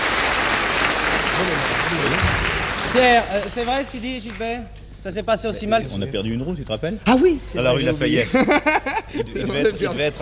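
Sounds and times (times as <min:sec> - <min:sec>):
audience applause: 0:00.0 - 0:04.0
speech: 0:01.4 - 0:10.2
laughter: 0:08.1 - 0:10.2.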